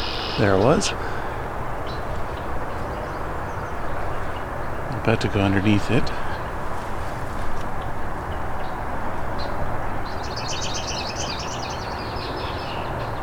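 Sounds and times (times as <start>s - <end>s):
red-winged blackbirds calling and trilling: 0.0s - 13.2s
steady broadband roar of wind or traffic: 0.0s - 13.2s
speech: 0.4s - 1.2s, 5.0s - 6.2s.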